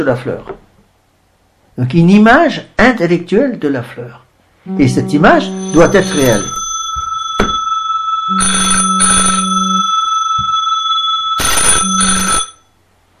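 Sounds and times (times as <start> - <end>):
speech: 0.0 - 0.6, 1.8 - 6.6
steady electronic tone: 4.6 - 12.6
telephone rapid rattling bell ringing: 4.7 - 12.7.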